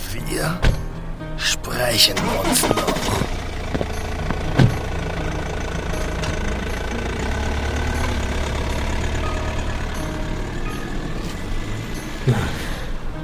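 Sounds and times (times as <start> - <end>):
speech: 0.2 - 0.7, 1.7 - 3.1
car engine rumbling as the car drives away: 2.1 - 13.2
sharp knocks: 3.7 - 5.0.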